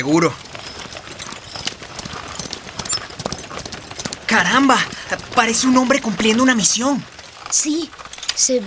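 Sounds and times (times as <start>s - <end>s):
speech: 0.0s - 0.5s, 4.3s - 8.6s
horse carrying a traveler galloping past, hooves clip-clopping: 0.0s - 8.6s.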